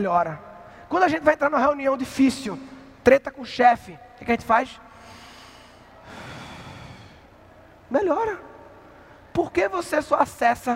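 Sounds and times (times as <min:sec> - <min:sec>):
speech: 0:00.0 - 0:05.2, 0:07.9 - 0:08.5, 0:09.4 - 0:10.7
long deep breath drawn in through the nose: 0:04.9 - 0:07.3.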